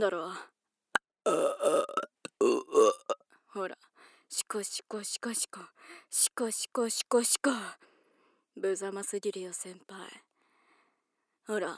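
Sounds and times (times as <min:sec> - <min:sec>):
speech: 0:00.0 - 0:00.5, 0:03.6 - 0:07.9, 0:08.6 - 0:10.2, 0:11.5 - 0:11.7
drawn-out gurgling low-pitched burps: 0:01.3 - 0:03.2.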